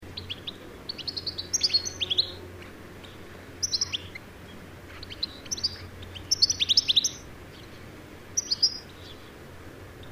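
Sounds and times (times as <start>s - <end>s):
low steady hum: 0.0s - 10.1s
European goldfinch Carduelis carduelis twittering: 0.2s - 4.2s, 4.9s - 7.8s, 8.4s - 9.3s.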